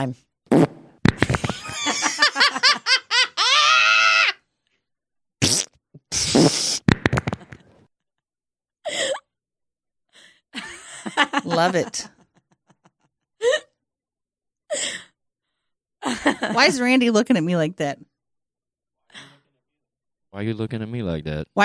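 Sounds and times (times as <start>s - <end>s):
speech: 0.0s - 0.7s, 11.5s - 12.2s, 16.3s - 18.1s, 20.4s - 21.6s
fart sound effect: 0.5s - 1.5s, 5.4s - 7.7s
laughter: 1.2s - 4.1s, 10.6s - 13.1s, 16.0s - 16.9s.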